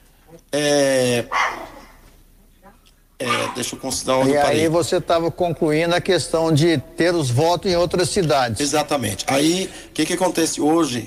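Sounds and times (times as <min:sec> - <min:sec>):
speech: 0:00.3 - 0:01.6, 0:03.6 - 0:11.0
female dog barking indoors: 0:01.3 - 0:01.9, 0:03.2 - 0:03.8.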